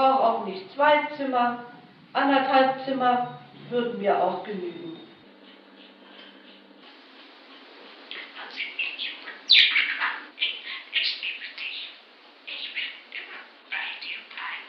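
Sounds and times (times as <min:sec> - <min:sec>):
speech: 0:00.5 - 0:05.0
small pet bird chirping and twittering: 0:08.1 - 0:14.6.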